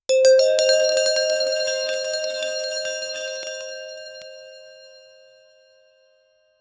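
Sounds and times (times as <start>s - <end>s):
musical prize jingle: 0.1s - 4.2s.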